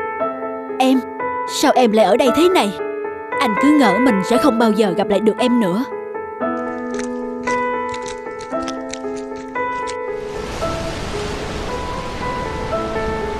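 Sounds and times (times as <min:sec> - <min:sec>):
gentle tonal music: 0:00.0 - 0:13.3
speech: 0:00.8 - 0:06.0
ocean waves surging and roaring: 0:10.1 - 0:13.3.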